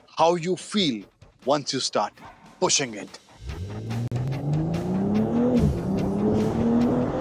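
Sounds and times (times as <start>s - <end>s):
speech: 0.2s - 3.2s
road noise: 3.2s - 7.2s
car engine accelerating: 3.3s - 7.2s.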